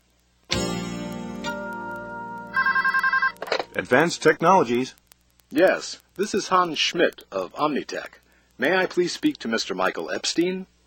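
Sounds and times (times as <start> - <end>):
telephone ringing with electronic tone and warbling trill: 2.5 - 3.8
speech: 3.8 - 10.7.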